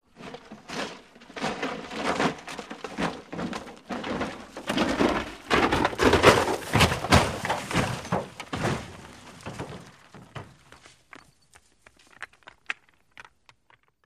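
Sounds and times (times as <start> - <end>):
vehicle falling down: 0.7 - 10.9.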